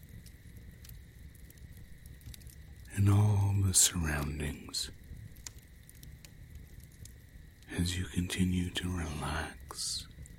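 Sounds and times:
campfire crackling: 0:00.0 - 0:10.3
speech: 0:03.0 - 0:05.0, 0:07.8 - 0:10.1.

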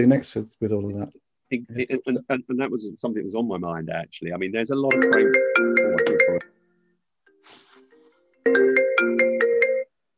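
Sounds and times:
speech: 0:00.0 - 0:05.7
mobile phone ringtone: 0:05.0 - 0:06.6, 0:08.4 - 0:10.0.

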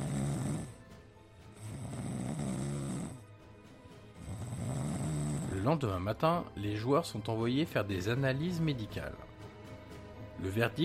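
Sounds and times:
man snoring in slow heavy cycles: 0:00.0 - 0:03.4, 0:04.1 - 0:05.8
speech: 0:05.6 - 0:09.3, 0:10.4 - 0:10.8.

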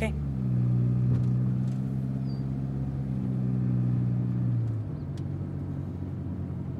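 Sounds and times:
car engine humming while driving and pulling to a stop: 0:00.0 - 0:06.7.

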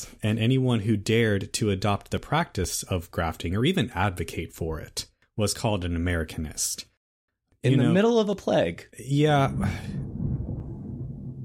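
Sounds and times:
speech: 0:00.1 - 0:06.9, 0:07.6 - 0:10.1
thunder rumbling during a thunderstorm: 0:09.3 - 0:11.4.

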